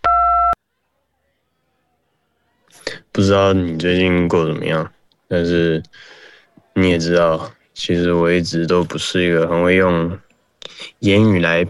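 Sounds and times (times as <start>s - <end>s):
voicemail two-tone electronic beep: 0.0s - 0.6s
speech: 3.2s - 6.2s, 6.8s - 10.2s, 10.8s - 11.6s.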